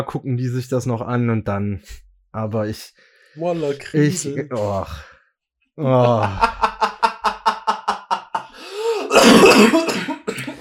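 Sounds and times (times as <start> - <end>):
speech: 0.0 - 5.1, 5.8 - 6.6, 9.5 - 10.0
laughter: 5.8 - 8.6
person coughing in a rapid fit with harsh hacking: 8.9 - 10.5.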